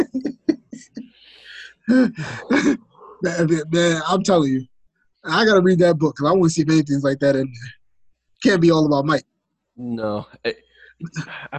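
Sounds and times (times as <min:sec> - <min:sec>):
person coughing into a microphone: 0:00.0 - 0:02.8
laughter: 0:00.0 - 0:04.1, 0:10.0 - 0:11.5
speech: 0:01.9 - 0:07.8, 0:08.4 - 0:11.5.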